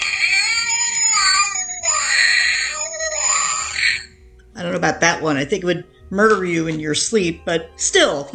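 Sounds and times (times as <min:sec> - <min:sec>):
cat meowing in long drawn-out wavering yowls: 0:00.0 - 0:04.2
speech: 0:04.6 - 0:08.3.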